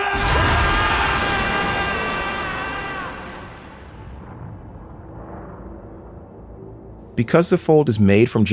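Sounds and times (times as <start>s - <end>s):
man screaming in pain: 0.0s - 3.4s
explosive burst with dense roaring rush and eerie ringing tones: 0.0s - 6.4s
speech: 7.2s - 8.5s.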